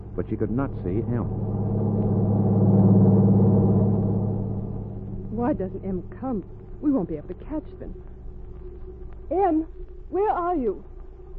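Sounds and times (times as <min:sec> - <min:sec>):
heavy truck engine passing at high speed: 0:00.0 - 0:07.6
speech: 0:00.2 - 0:01.6, 0:05.4 - 0:08.2, 0:09.3 - 0:11.3.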